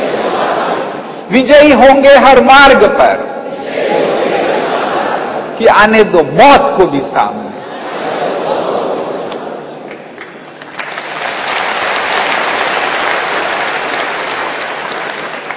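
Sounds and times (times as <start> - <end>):
laughter: 0.0 - 1.2, 3.7 - 5.6, 7.5 - 9.9
speech: 1.3 - 3.3, 5.6 - 7.5
large crowd applauding: 9.8 - 15.5.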